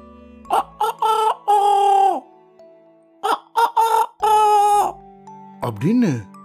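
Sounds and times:
rooster perched in a tree crowing in the morning in Madikeri: 0.5 - 2.2, 3.2 - 5.0
speech: 5.8 - 6.3.

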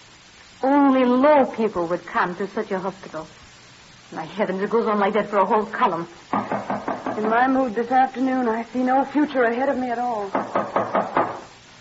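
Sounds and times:
speech: 1.0 - 3.4, 4.1 - 6.6, 7.2 - 10.9
firm knocks on a wooden door: 6.3 - 7.4, 10.3 - 11.5.

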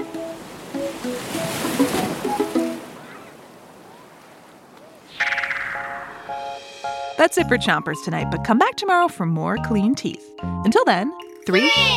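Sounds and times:
ocean wave crashing: 0.0 - 4.3, 4.9 - 7.5
speech: 7.2 - 11.9.

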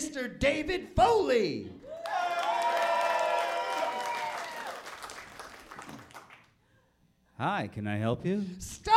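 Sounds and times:
speech: 0.1 - 1.9, 7.4 - 8.9
audience cheering and high whoops: 1.8 - 4.9
audience applause: 2.0 - 6.5.

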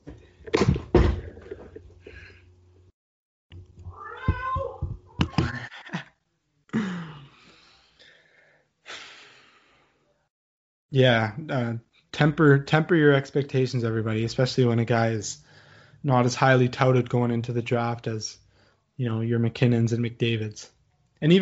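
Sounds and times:
cat meowing to be let out: 3.9 - 5.4
speech: 11.0 - 18.4, 19.0 - 21.4.

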